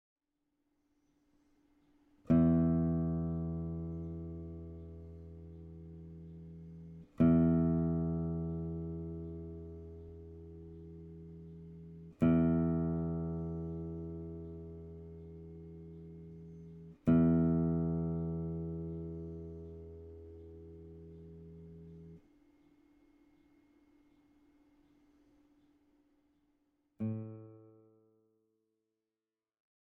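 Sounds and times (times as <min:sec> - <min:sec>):
guitar tuning notes: 0:02.3 - 0:24.5, 0:27.0 - 0:28.0.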